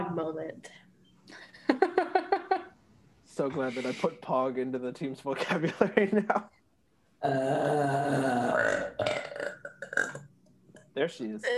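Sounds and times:
speech: 0.2 - 1.9, 3.4 - 6.6, 7.2 - 9.1, 11.0 - 11.5
long loud drawn-out burp: 7.2 - 10.3.

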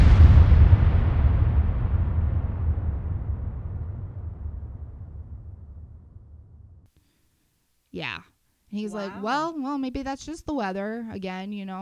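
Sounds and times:
single heavy gunshot blast: 0.0 - 5.1
deep rolling rumble echo: 0.0 - 6.9
speech: 8.0 - 11.8.

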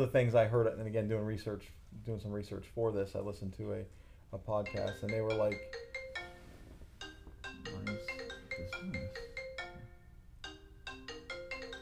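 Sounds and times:
speech: 0.0 - 5.9
cell phone ringtone playing through a computer: 4.6 - 11.8.

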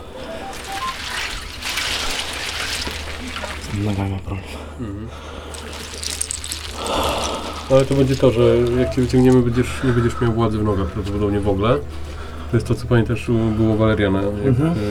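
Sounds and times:
water sloshing and splashing in an ice bath with a person sitting in it: 0.0 - 4.3, 5.4 - 10.3
speech: 3.8 - 5.9, 7.7 - 14.8.

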